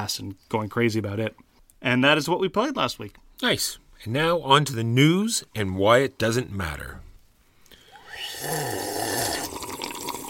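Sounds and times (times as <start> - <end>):
speech: 0.0 - 7.1
water gurgling and slurping as it is drunk: 8.0 - 10.2
wet gulps: 8.0 - 10.2.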